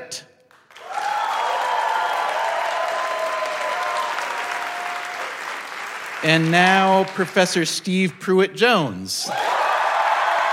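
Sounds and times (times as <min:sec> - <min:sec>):
audience applause: 0:00.5 - 0:07.7, 0:09.3 - 0:10.5
speech: 0:06.2 - 0:09.4.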